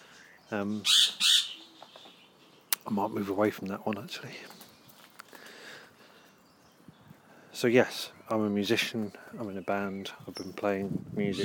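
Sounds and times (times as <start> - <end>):
speech: 0.5 - 1.4, 2.9 - 4.6, 7.6 - 11.4
bird squawking and screeching in a bird enclosure: 0.8 - 2.4.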